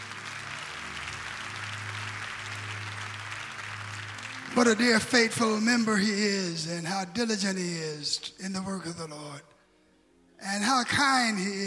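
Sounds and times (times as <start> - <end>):
audience clapping hands: 0.0 - 6.1
speech: 4.6 - 9.5, 10.4 - 11.6.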